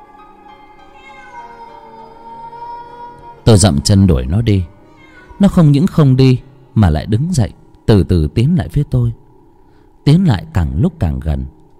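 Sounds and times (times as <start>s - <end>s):
cat meowing outside a house: 0.8s - 2.4s, 4.8s - 5.6s
speech: 3.5s - 4.7s, 5.4s - 9.2s, 10.0s - 11.6s.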